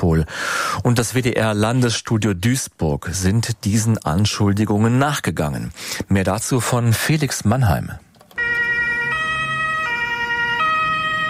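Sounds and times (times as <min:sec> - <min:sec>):
speech: 0:00.0 - 0:08.0
two-tone ambulance siren: 0:08.4 - 0:11.2.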